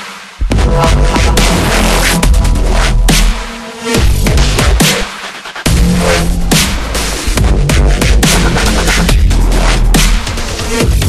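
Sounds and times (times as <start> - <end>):
space background ambience: 0.4 - 11.0.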